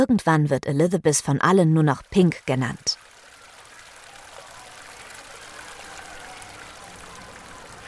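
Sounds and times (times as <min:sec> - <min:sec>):
speech: 0:00.0 - 0:03.0
creek water babbling along its bank: 0:01.6 - 0:07.8.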